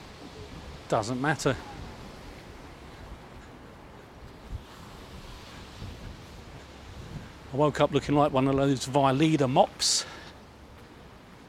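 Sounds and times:
gale-force wind buffeting the microphone on a seafront on a dark wet day: 0.0s - 8.9s
wash of surf on a seafront: 0.0s - 11.4s
speech: 0.9s - 1.8s, 7.6s - 10.2s.

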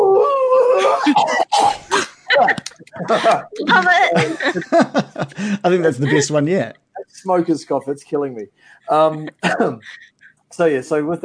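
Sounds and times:
player imitating a raging beast's howl: 0.0s - 1.1s
laughter: 0.6s - 6.7s, 8.9s - 10.3s
speech: 3.1s - 11.2s.

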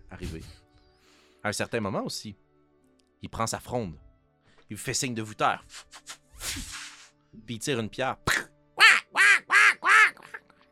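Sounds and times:
speech: 0.2s - 0.6s, 1.4s - 2.4s, 3.2s - 4.1s, 4.7s - 6.7s, 7.3s - 8.5s
crow cawing: 8.8s - 10.5s.

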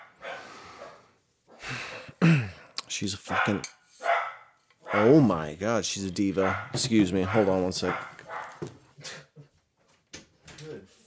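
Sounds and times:
speech: 3.0s - 3.8s, 4.9s - 9.2s
female dog giving high yipping barks: 3.3s - 5.2s, 6.4s - 8.7s.

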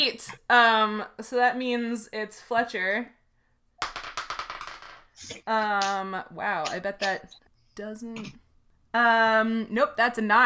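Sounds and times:
speech: 0.0s - 3.2s, 5.2s - 10.4s
die clattering onto a hard tabletop: 3.8s - 5.2s.

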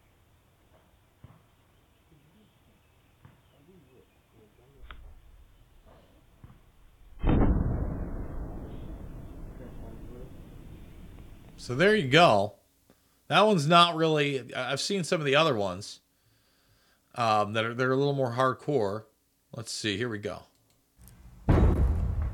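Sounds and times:
sonic boom: 7.0s - 11.7s, 21.5s - 22.3s
speech: 11.6s - 12.6s, 13.3s - 16.0s, 17.2s - 20.5s.

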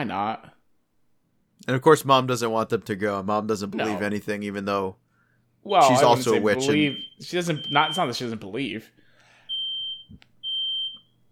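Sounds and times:
speech: 0.0s - 0.6s, 1.6s - 5.0s, 5.6s - 9.0s
smoke alarm high-pitched beeping: 6.6s - 8.3s, 9.5s - 11.3s.

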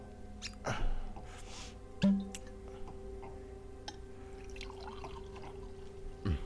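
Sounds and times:
low steady hum: 0.0s - 6.4s
red wine poured into two glasses: 4.3s - 5.9s.

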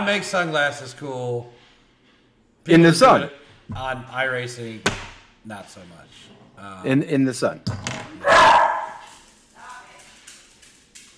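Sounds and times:
speech: 0.0s - 1.6s, 2.6s - 8.3s
dog barking: 8.2s - 9.1s.

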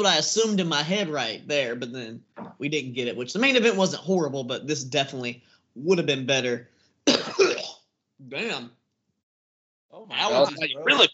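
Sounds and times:
speech: 0.0s - 7.5s, 8.2s - 8.8s, 9.9s - 11.1s
guttural throat clearing with gagging edge: 7.1s - 7.8s
harsh raspy cough: 7.1s - 7.8s.

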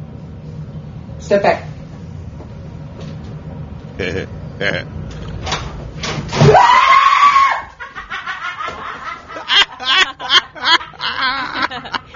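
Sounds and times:
speech: 1.3s - 1.7s, 4.0s - 5.0s
woman screaming in fright at a snake in the bathroom: 6.4s - 7.8s
laughter: 7.8s - 12.1s.

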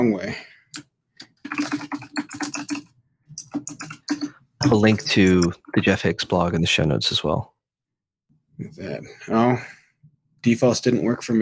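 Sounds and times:
speech: 0.0s - 0.9s, 4.6s - 7.5s, 8.6s - 9.8s, 10.4s - 11.4s
typing on a computer keyboard while entering settings: 0.8s - 5.6s.

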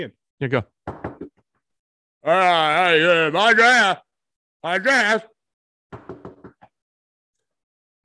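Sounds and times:
speech: 0.0s - 0.8s, 2.2s - 5.3s
knocking on a door: 0.8s - 1.3s, 5.9s - 6.7s.

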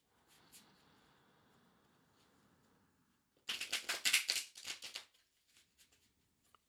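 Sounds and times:
tarot cards being shuffled: 3.5s - 5.0s.

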